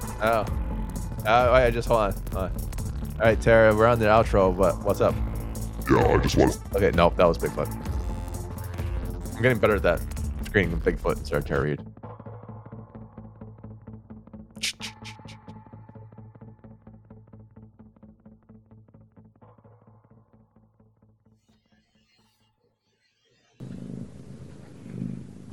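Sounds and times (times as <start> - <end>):
speech: 0.2 - 0.6, 1.2 - 2.6, 3.2 - 5.3, 5.9 - 7.8, 9.4 - 11.9
cat purring: 23.7 - 25.5.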